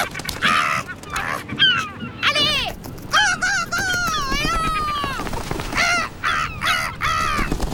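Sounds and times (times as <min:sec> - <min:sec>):
gull calling loudly with harsh nasal squawks and yelps: 0:00.0 - 0:07.7.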